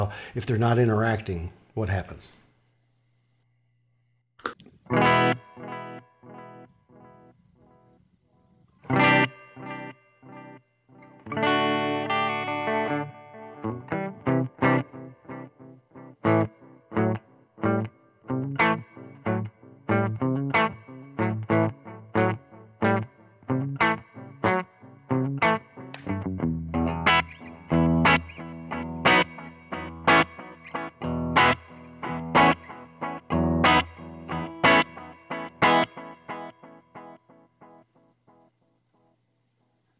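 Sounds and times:
speech: 0.1 - 2.4
electric guitar played through a delay pedal with reverb turned down: 4.9 - 7.9, 8.8 - 15.6, 16.2 - 37.4.

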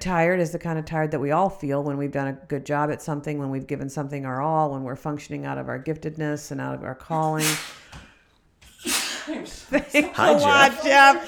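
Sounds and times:
speech: 0.0 - 8.1, 8.8 - 11.2
man sneezing: 7.2 - 9.4
laughter: 9.0 - 11.2.

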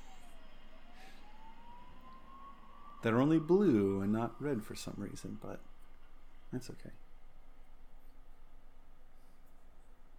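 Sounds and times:
faint siren wailing in a slow thin tone: 0.0 - 7.7
speech: 3.0 - 5.7, 6.5 - 7.0.

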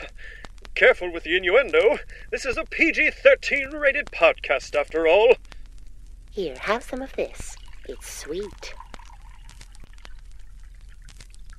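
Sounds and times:
speech: 0.8 - 5.5, 6.4 - 8.8
nectar pouring into a cup: 7.3 - 11.5
small drips and clinks: 7.4 - 11.5.

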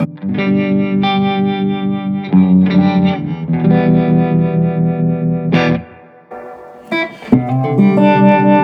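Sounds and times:
electric guitar through an amplifier with bias tremolo and reverb: 0.0 - 8.6.

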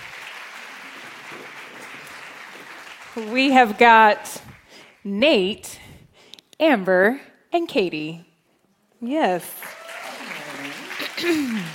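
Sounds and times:
audience applause welcoming guests onto a stage: 0.0 - 3.8, 9.5 - 11.7
speech: 3.2 - 5.8, 6.6 - 8.3, 9.0 - 9.7, 11.2 - 11.7.

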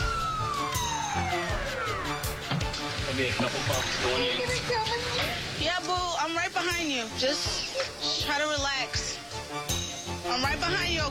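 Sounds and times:
ambulance siren wailing with downward sliding pitch: 0.0 - 2.5
speech: 3.2 - 9.6, 10.3 - 11.0.

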